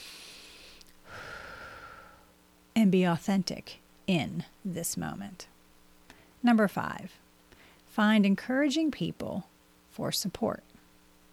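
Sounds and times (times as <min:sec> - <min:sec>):
deep breath drawn slowly: 0:00.0 - 0:02.4, 0:07.5 - 0:07.8
speech: 0:02.8 - 0:05.5, 0:06.4 - 0:07.2, 0:08.0 - 0:10.7.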